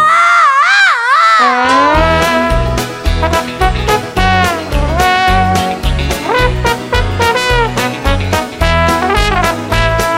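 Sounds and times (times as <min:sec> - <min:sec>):
loud wavering high-pitched scream: 0:00.0 - 0:02.8
bouncy music with a steady beat and voices singing: 0:01.5 - 0:10.1.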